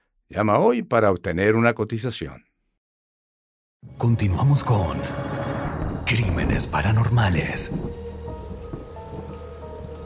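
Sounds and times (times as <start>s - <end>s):
speech: 0.3s - 2.5s, 3.8s - 5.2s, 6.1s - 8.0s
deep rolling rumble of thunder: 5.3s - 10.0s
steady dense rainfall over a city: 6.1s - 10.0s.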